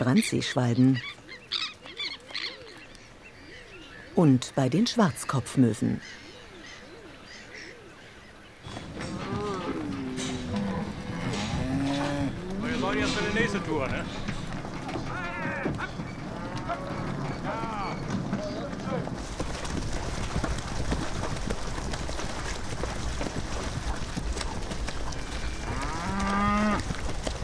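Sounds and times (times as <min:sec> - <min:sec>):
speech: 0:00.0 - 0:01.7, 0:04.2 - 0:06.2, 0:13.5 - 0:14.2
steady wind: 0:00.0 - 0:27.4
cows mooing while being driven across mudflats: 0:08.7 - 0:18.2, 0:25.2 - 0:27.0.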